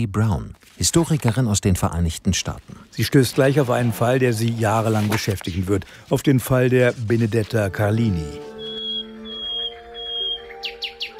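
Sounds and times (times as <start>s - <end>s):
speech: 0.0s - 8.5s
nightingale singing: 7.8s - 11.1s.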